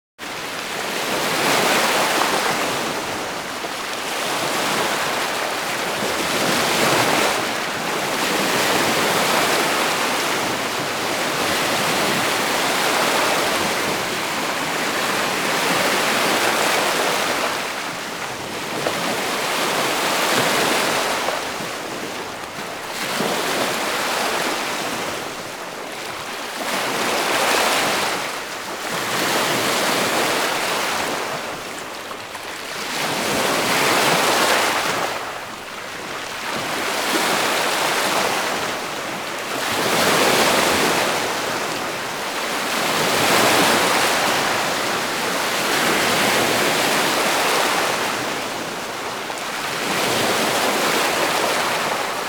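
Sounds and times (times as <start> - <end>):
lake water: 0.2 - 52.2.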